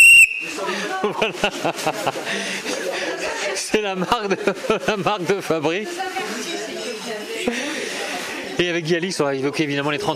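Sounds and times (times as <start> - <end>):
short shrill whistle blast: 0.0 - 0.6
laughter: 0.3 - 8.8
speech: 0.5 - 2.8, 3.6 - 6.5, 8.6 - 10.1.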